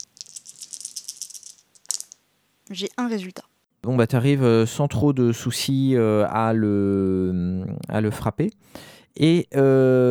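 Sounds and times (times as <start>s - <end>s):
four dice rattling as if shaken in a hand or cup: 0.0s - 2.2s
speech: 2.7s - 10.0s.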